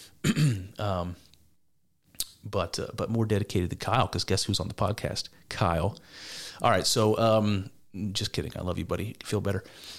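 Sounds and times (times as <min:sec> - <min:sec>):
person under the weather clearing their throat: 0:00.2 - 0:00.8
speech: 0:00.8 - 0:01.2, 0:02.4 - 0:09.9.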